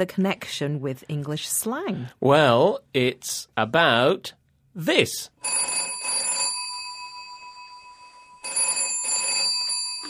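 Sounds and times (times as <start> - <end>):
speech: 0.0 - 5.9
telephone ringing with a trilling electronic bell: 5.4 - 10.0.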